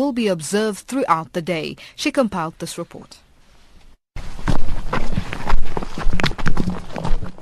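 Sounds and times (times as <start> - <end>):
speech: 0.0 - 3.2
several people's footsteps crunching on rough ground: 4.2 - 7.4.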